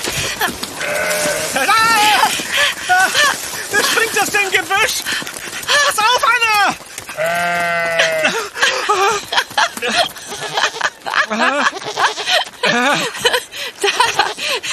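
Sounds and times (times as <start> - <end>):
laughter: 0.1 - 4.8, 7.9 - 14.7
billy goat bleating: 0.8 - 2.3, 7.2 - 8.4, 11.7 - 12.8
people talking: 1.6 - 2.4, 3.0 - 6.8, 12.7 - 13.1.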